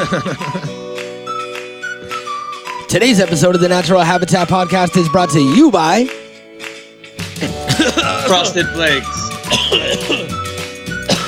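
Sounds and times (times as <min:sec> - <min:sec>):
laughter: 0:00.0 - 0:00.9, 0:07.4 - 0:10.4
speech: 0:00.0 - 0:00.9, 0:02.9 - 0:06.2, 0:07.4 - 0:10.4
person coughing roughly and throatily: 0:07.4 - 0:08.6, 0:09.5 - 0:10.3, 0:11.1 - 0:11.2.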